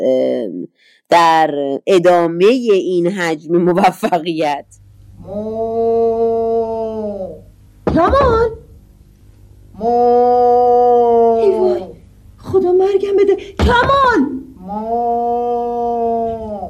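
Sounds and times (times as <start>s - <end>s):
speech: 0.0s - 8.6s, 9.8s - 16.6s
man imitating cow mooing: 5.2s - 7.5s, 9.8s - 12.0s, 14.6s - 16.6s
knocking on a door: 7.8s - 8.4s.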